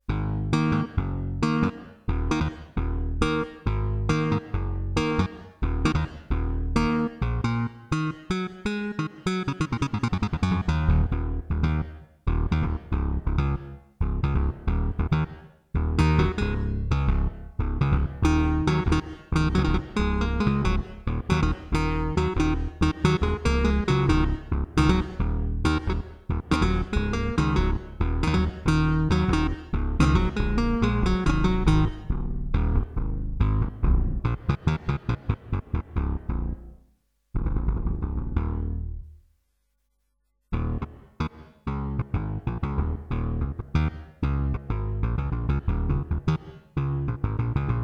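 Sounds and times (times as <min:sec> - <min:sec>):
bass guitar: 0:00.0 - 0:39.2, 0:40.5 - 0:47.8.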